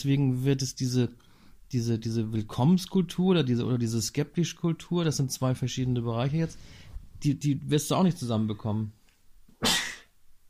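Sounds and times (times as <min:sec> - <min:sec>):
speech: 0:00.0 - 0:09.0
brief intake of breath: 0:06.6 - 0:07.0
sharp sneeze: 0:09.6 - 0:10.2.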